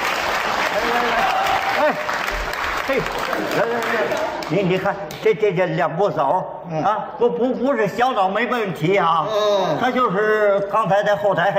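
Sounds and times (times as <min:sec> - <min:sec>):
audience applause at a stage comedy show: 0:00.0 - 0:04.7
speech: 0:02.9 - 0:11.5.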